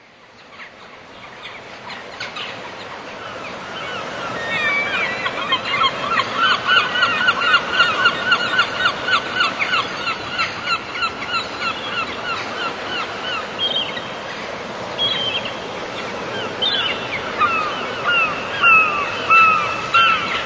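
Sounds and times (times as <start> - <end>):
gulls calling in a dense chorus: 0.4 - 20.4.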